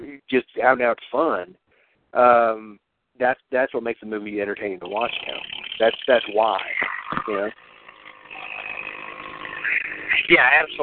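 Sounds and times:
speech: 0.3s - 7.7s, 10.3s - 10.8s
motorcycle roaring past: 8.3s - 10.7s.

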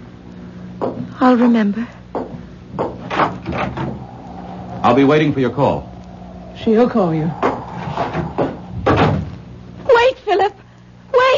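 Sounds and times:
low hum: 0.0s - 11.3s
speech: 0.9s - 2.0s, 3.2s - 4.0s, 4.8s - 5.9s, 6.6s - 8.3s
door opening and closing: 2.8s - 4.1s, 7.4s - 9.4s.

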